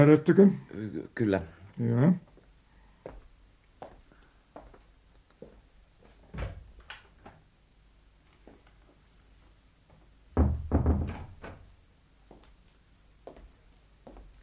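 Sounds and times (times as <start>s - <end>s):
speech: 0.0s - 2.3s
soft footsteps: 2.2s - 6.3s, 8.3s - 10.2s, 12.2s - 14.4s
door opening and banging shut with a heavy thud: 10.4s - 11.7s.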